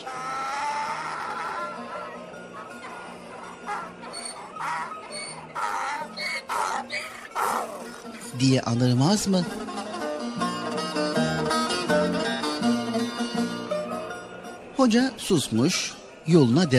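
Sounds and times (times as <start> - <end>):
donkey loaded with barrels of pickles braying in a street: 0.0 - 8.4
faint murmur: 0.0 - 8.6, 9.4 - 16.7
speech: 8.4 - 9.6, 14.8 - 16.7.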